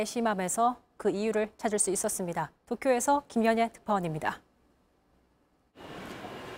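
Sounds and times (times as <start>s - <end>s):
speech: 0.0s - 4.5s
subway station ambience at Shinjuku Station in Tokyo Japan: 5.8s - 6.5s.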